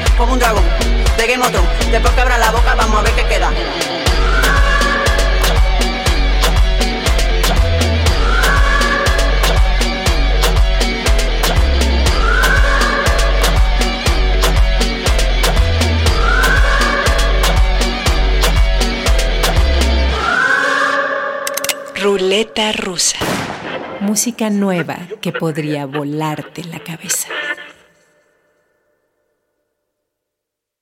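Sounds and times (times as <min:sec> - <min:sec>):
driving electronic beat with thumping bass: 0:00.0 - 0:20.1
speech: 0:00.2 - 0:04.2, 0:22.0 - 0:27.6
siren-like wail: 0:03.8 - 0:06.0, 0:08.0 - 0:09.7, 0:12.0 - 0:13.8, 0:16.0 - 0:17.7, 0:20.0 - 0:22.4.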